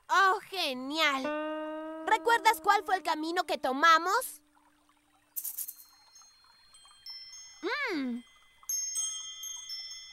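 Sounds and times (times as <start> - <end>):
speech: 0.7 - 1.4, 2.1 - 4.4, 7.6 - 8.3
small bells jingling: 5.4 - 10.1.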